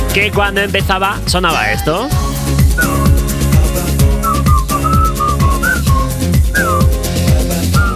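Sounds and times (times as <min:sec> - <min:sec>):
speech: 0:00.2 - 0:03.0
bright whistled melody in a dance song intro: 0:02.2 - 0:03.3, 0:04.1 - 0:07.1, 0:07.7 - 0:07.9
steady pulsing dance beat with deep bass: 0:04.1 - 0:07.9.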